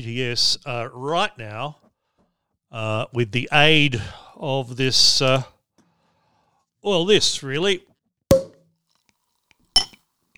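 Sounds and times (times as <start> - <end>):
speech: 0.0 - 1.8, 2.7 - 5.6, 6.8 - 7.9
glasses clinking in a toast: 9.8 - 10.0.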